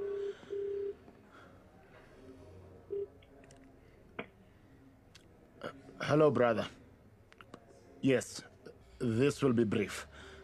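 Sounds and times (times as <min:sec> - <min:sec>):
telephone ringing tone through the earpiece: 0:00.0 - 0:01.0
speech: 0:06.0 - 0:06.8, 0:08.0 - 0:10.3.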